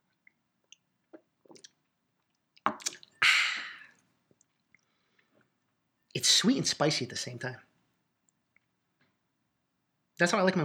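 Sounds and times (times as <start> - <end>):
wet clicks and drips: 0.1 - 3.2, 3.8 - 5.6, 8.2 - 9.2
long breathy exhale: 3.2 - 3.9
speech: 6.2 - 7.7, 10.2 - 10.6.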